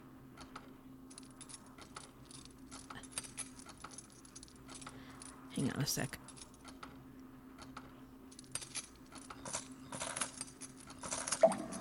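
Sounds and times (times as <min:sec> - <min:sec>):
low steady hum: 0:00.0 - 0:11.8
bunch of keys jangling: 0:01.1 - 0:05.4, 0:06.2 - 0:06.7, 0:08.3 - 0:11.8
speech: 0:05.6 - 0:06.2.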